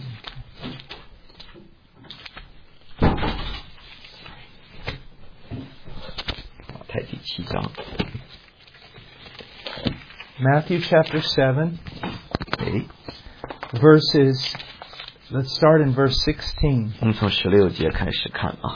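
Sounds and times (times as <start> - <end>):
door swinging shut with a solid thud: 3.0 - 3.7
speech: 7.0 - 8.1, 10.4 - 11.9, 12.7 - 13.0, 13.7 - 14.6, 15.3 - 18.7.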